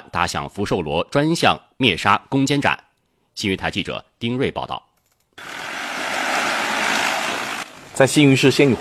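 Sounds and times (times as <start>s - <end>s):
speech: 0.1s - 2.8s, 3.4s - 5.6s, 8.0s - 8.7s
agricultural crop-spraying drone rotor roar taking off: 5.4s - 8.0s.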